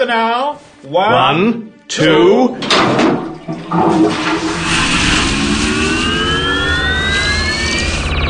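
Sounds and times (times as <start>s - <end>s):
speech: 0.0s - 4.5s
toilet chain flush: 2.6s - 5.8s
rising whistling tones of a toilet flush: 3.4s - 8.2s.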